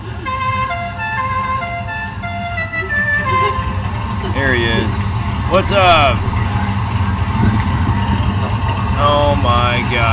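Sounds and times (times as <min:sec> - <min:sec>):
low car engine rumble: 0:00.0 - 0:10.1
unusual musical car horn blaring shifting tones: 0:00.2 - 0:04.0
speech: 0:04.4 - 0:06.3, 0:09.0 - 0:10.1.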